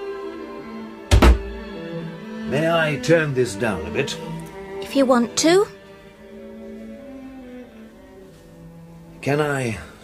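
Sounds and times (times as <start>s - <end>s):
unlocked door opening with double thunk of latch and frame: 1.1s - 1.6s
speech: 2.5s - 5.8s, 9.2s - 9.9s.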